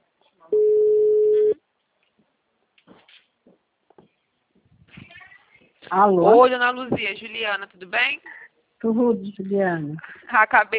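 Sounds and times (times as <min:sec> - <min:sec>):
ringback tone of an outgoing telephone call: 0:00.6 - 0:01.6
speech: 0:05.9 - 0:10.7.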